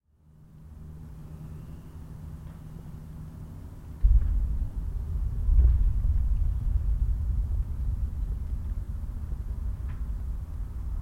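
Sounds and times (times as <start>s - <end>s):
small earthquake rumble: 4.0s - 11.0s.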